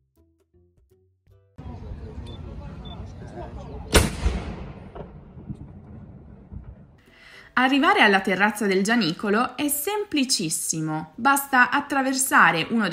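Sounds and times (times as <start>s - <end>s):
murmur of an outdoor crowd: 1.6s - 4.4s
speech: 3.4s - 4.6s, 7.6s - 12.9s
ceremonial noon cannon firing: 3.9s - 7.0s.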